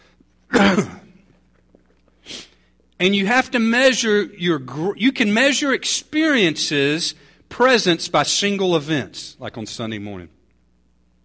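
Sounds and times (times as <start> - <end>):
loud rough throat-clearing cough: 0.5 - 1.3
speech: 0.6 - 1.0, 3.0 - 10.4.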